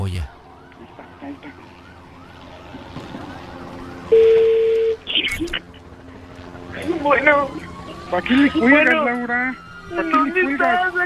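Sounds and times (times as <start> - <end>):
speech: 0.1 - 0.4, 7.1 - 11.0
wavering siren-like tone: 0.3 - 5.1, 5.8 - 11.0.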